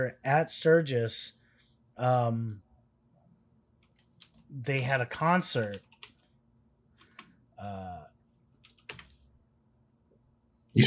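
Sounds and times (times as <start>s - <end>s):
speech: 0.0s - 1.4s, 2.0s - 2.6s, 4.5s - 5.9s, 7.6s - 8.1s
faint typing on a computer keyboard: 3.8s - 4.5s, 5.5s - 6.3s, 7.0s - 7.3s, 8.5s - 9.2s.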